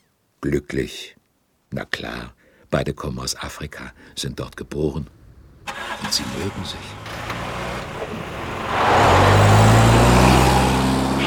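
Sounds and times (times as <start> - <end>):
speech: 0.4 - 5.2, 6.0 - 7.2
jeep engine driving away: 5.0 - 11.2.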